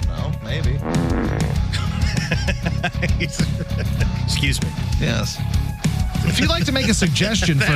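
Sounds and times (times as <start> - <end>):
dense low rumbling rock music backing: 0.4 - 5.0
loud buzzy fart sound effects: 0.8 - 1.7
laughter: 1.7 - 4.3, 6.3 - 7.7
speech: 4.4 - 5.6, 6.2 - 7.7.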